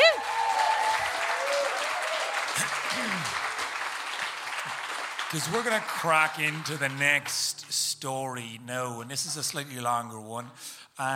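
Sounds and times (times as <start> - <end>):
crowd applauding loudly: 0.0 - 7.8
speech: 5.3 - 11.1.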